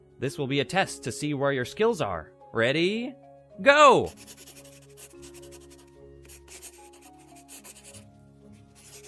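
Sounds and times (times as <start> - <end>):
soft sustained music: 0.0 - 9.0
speech: 0.2 - 4.6
pencils scratching across paper in an art class: 4.1 - 9.0.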